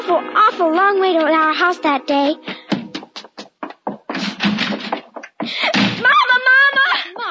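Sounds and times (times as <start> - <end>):
quick thudding footsteps: 0.0 - 7.2
speech: 0.1 - 2.5
loud door slam with a rattling echo: 4.1 - 5.0.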